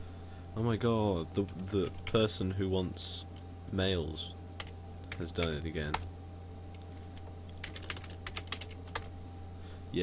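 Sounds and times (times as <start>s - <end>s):
steady low hum: 0.0s - 10.0s
speech: 0.6s - 4.4s, 5.2s - 6.1s
typing on a computer keyboard: 7.5s - 9.1s.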